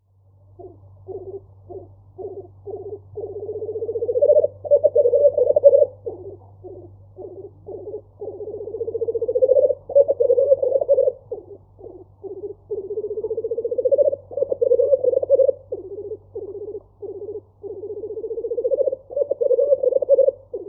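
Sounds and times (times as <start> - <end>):
black grouse display call: 0.5 - 20.6.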